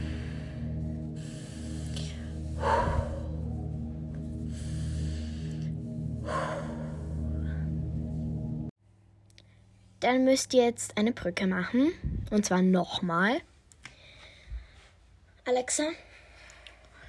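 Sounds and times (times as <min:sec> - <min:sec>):
slow breathing in and out during a seated cross-legged yoga exercise: 0:00.0 - 0:08.7, 0:13.9 - 0:15.1, 0:16.0 - 0:17.0
gentle sustained music: 0:00.0 - 0:08.8
speech: 0:10.0 - 0:13.5, 0:15.5 - 0:16.1.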